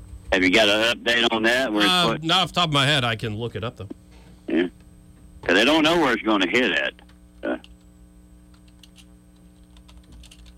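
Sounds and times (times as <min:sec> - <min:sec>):
steady low electrical hum: 0:00.0 - 0:10.5
speech: 0:00.4 - 0:04.8, 0:05.4 - 0:07.7
typing on a computer keyboard: 0:08.5 - 0:10.5.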